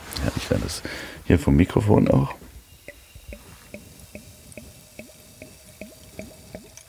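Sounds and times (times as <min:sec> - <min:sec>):
speech: 0:00.5 - 0:02.4
champagne glugging from a bottle into a wheat beer glass: 0:02.7 - 0:06.8.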